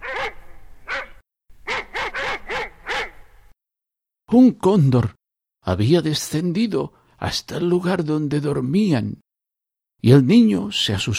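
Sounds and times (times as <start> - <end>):
dog barking sharply at night: 0.0 - 3.2
speech: 4.3 - 9.2, 10.0 - 11.1.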